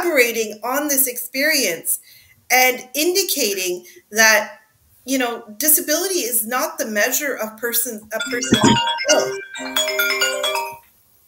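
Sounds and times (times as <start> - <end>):
speech: 0.0 - 10.4
mobile phone ringtone playing a bright melodic electronic tune: 8.2 - 10.8.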